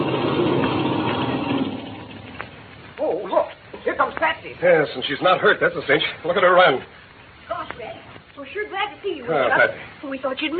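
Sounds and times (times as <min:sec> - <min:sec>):
rumbling airplane engine droning then cut off: 0:00.0 - 0:02.4
speech: 0:04.4 - 0:07.0, 0:08.4 - 0:10.5.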